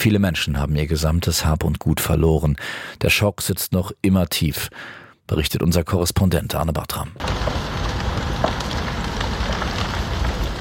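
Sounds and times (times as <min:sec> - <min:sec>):
speech: 0:00.0 - 0:07.8, 0:08.4 - 0:08.7
crackling flames roaring in a strong wind: 0:07.2 - 0:10.5.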